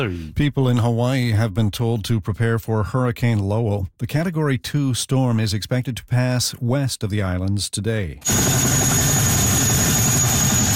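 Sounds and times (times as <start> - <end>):
speech: 0.0 - 8.9
military helicopter drone delivering troops and supplies: 8.2 - 10.7.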